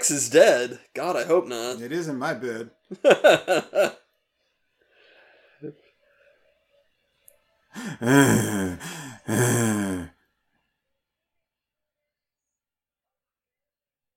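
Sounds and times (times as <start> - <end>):
speech: 0.1 - 4.0, 5.6 - 5.8, 7.8 - 10.1
laughter: 2.9 - 4.0
heavy voiced breathing: 4.8 - 5.8, 7.8 - 10.1
long loud groaning exhales: 7.8 - 10.1.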